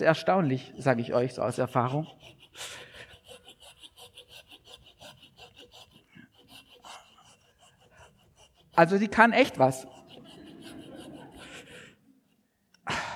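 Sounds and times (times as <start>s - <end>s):
speech: 0.0s - 2.9s, 8.8s - 9.9s
Japanese pull saw cutting through wood: 0.0s - 12.0s
laughter: 9.4s - 12.2s.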